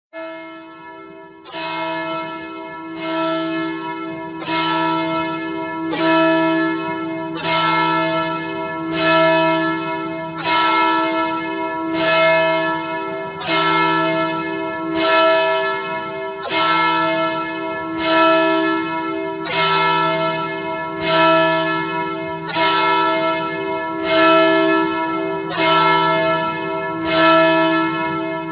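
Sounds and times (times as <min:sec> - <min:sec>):
church bell: 0:00.2 - 0:28.4.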